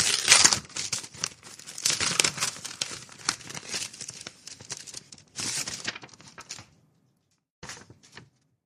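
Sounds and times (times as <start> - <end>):
mailed paper letter envelope crinkling and tearing as it is opened: 0.0 - 6.7.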